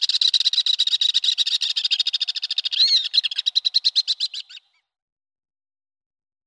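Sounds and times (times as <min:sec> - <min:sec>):
Alpine swift trill call: 0:00.0 - 0:04.9.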